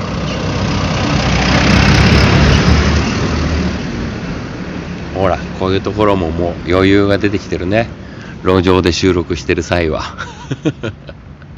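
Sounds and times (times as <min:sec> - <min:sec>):
car driving past on a street: 0:00.0 - 0:05.2
car engine and tire rumble: 0:00.0 - 0:09.9
speech: 0:05.2 - 0:11.2
laughter: 0:10.0 - 0:11.5.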